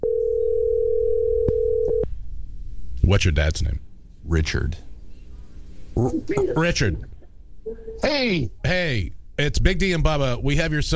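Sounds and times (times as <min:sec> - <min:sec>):
phone dial tone through a studio mixing board: 0:00.0 - 0:02.0
speech: 0:03.1 - 0:04.9, 0:06.0 - 0:10.9.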